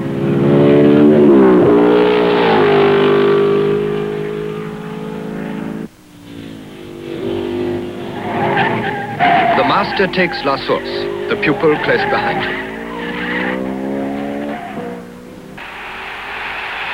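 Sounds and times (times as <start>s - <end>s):
racing car engines roaring past at high speed: 0.0s - 16.9s
racing car tires skidding: 0.0s - 16.9s
speech: 10.0s - 12.7s.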